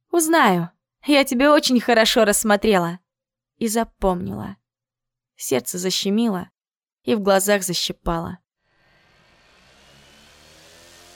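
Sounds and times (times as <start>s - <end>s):
speech: 0.2s - 3.0s, 3.6s - 4.6s, 5.4s - 8.4s
patrol drone engine whirring past outside a window: 8.7s - 11.1s.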